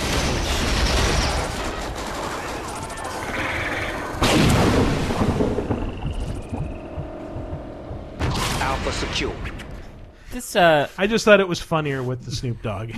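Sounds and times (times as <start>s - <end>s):
video game gunfire: 0.0s - 9.0s
speech: 9.2s - 9.6s, 10.3s - 12.9s.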